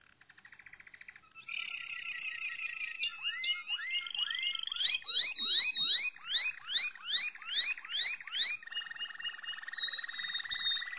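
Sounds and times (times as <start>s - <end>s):
Malinois canary song with trills, rolls and whistled notes: 0.0s - 10.9s.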